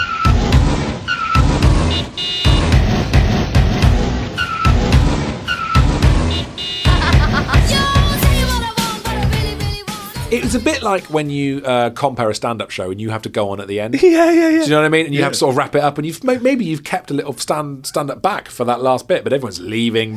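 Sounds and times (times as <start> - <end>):
car tire screeches: 0.0 - 6.9
car horns blaring: 0.0 - 11.0
loud driving music remix: 0.0 - 11.3
laughter: 6.9 - 7.9, 10.3 - 10.9, 13.9 - 15.6
speech: 10.5 - 20.1.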